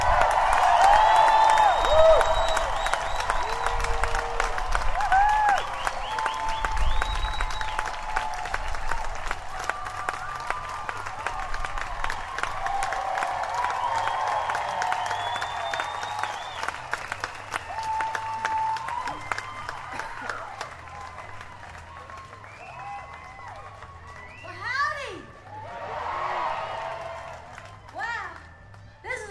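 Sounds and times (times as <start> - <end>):
music festival audience clapping: 0.0 - 29.0.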